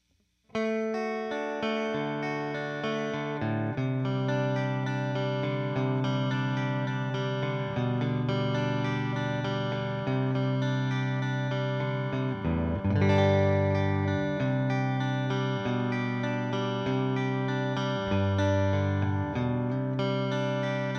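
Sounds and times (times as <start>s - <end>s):
electric guitar: 0.5s - 20.9s.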